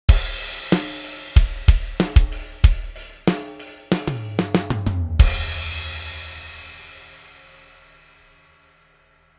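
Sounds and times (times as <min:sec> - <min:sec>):
tone kit loop: 0:00.1 - 0:04.6.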